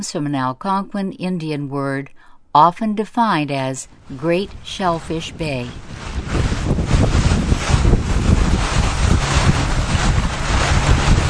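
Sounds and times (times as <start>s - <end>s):
speech: 0.0s - 6.5s
sightseeing boat engine rumble cruising on open water: 3.8s - 11.2s
heavy wind buffeting the microphone: 3.9s - 11.2s
wash of water from a cruising boat: 3.9s - 11.2s.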